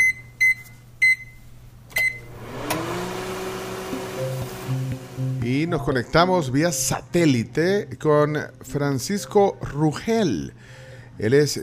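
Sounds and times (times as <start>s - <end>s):
short electronic beeps: 0.0s - 1.4s
microwave oven humming: 0.0s - 6.0s
speech: 5.6s - 11.6s.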